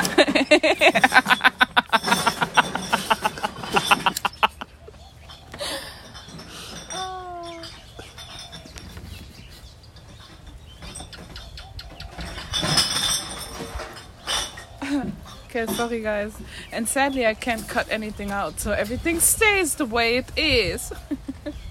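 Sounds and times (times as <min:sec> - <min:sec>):
glass clinking as people clean up: 0:00.0 - 0:04.6, 0:05.3 - 0:08.7, 0:12.2 - 0:15.9
person laughing: 0:00.0 - 0:05.0, 0:20.9 - 0:21.5
speech: 0:00.5 - 0:01.4, 0:16.0 - 0:21.0.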